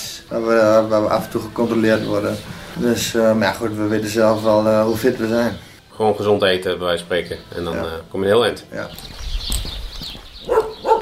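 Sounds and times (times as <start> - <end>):
speech: 0.3 - 9.2
dog barks: 10.4 - 11.0.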